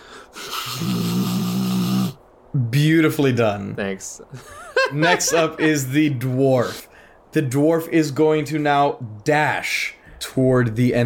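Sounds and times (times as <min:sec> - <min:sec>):
person vocally mimicking blowing their nose: 0:00.4 - 0:02.2
speech: 0:02.8 - 0:11.0
laughter: 0:04.3 - 0:06.1.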